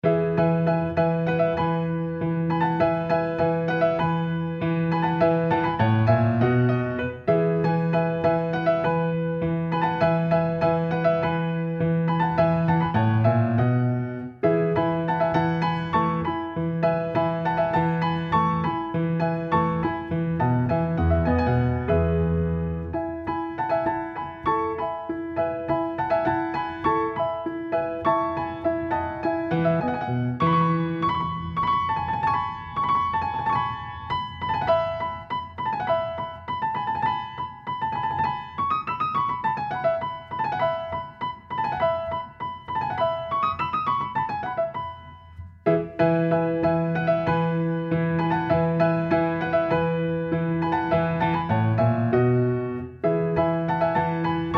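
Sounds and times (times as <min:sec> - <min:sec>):
solo piano: 0:00.0 - 0:54.5.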